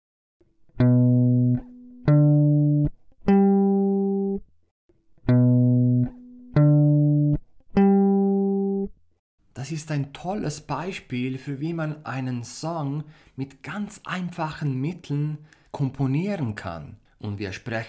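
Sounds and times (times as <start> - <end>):
guitar playing root notes of chord progression: 0.8 - 4.4, 5.2 - 8.9
speech: 9.7 - 17.8.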